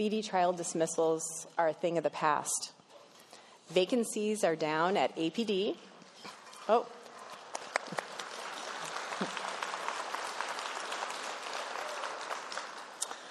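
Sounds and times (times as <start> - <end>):
speech: 0.0 - 2.8, 3.7 - 5.9, 6.7 - 7.0
audience applauding: 7.3 - 13.2.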